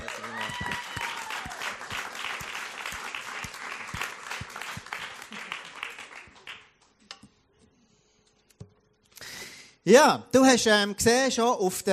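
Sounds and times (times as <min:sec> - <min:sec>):
audience applause: 0:00.0 - 0:06.7
speech: 0:09.9 - 0:11.9.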